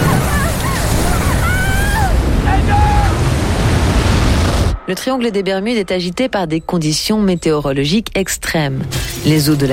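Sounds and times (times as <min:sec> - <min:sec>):
ocean waves crashing: 0:00.0 - 0:06.0
speech: 0:04.9 - 0:09.7.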